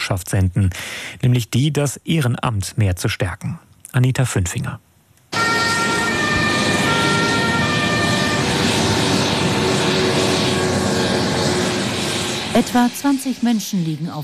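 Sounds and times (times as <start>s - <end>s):
speech: 0.1s - 4.9s, 12.6s - 14.2s
steady loud aircraft engine drone with tonal whines: 5.3s - 14.2s.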